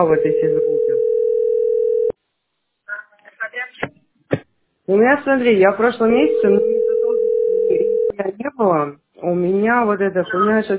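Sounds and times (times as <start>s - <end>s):
speech: 0.0s - 1.1s, 4.9s - 6.9s, 8.2s - 10.7s
telephone ringing tone while waiting for a call to connect: 0.0s - 2.2s, 6.1s - 8.1s.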